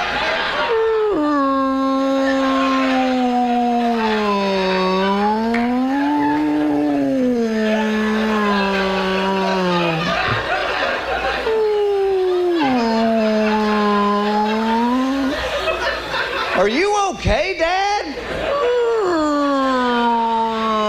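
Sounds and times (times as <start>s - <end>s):
laughter: 0.0s - 17.0s, 18.0s - 20.8s
voice imitating humpback whale song: 0.7s - 10.4s, 11.4s - 15.5s, 18.8s - 20.8s.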